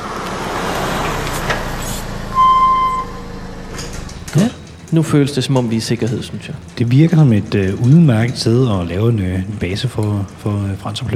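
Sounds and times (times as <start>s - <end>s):
high-pitched squeal: 0.0s - 4.6s
car engine rumbling while driving slowly into a garage: 0.0s - 11.1s
speech: 4.4s - 11.1s.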